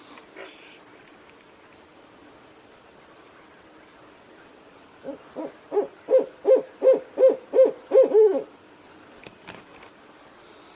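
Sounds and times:
speech: 5.0s - 5.9s
owl hooting at night: 5.0s - 8.5s.

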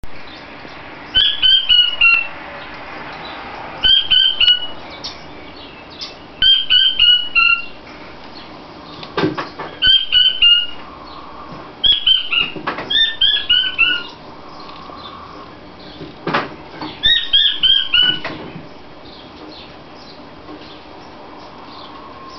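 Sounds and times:
king quail calling: 1.2s - 2.3s, 3.8s - 4.8s, 6.0s - 7.8s, 9.8s - 15.5s, 17.0s - 18.3s.

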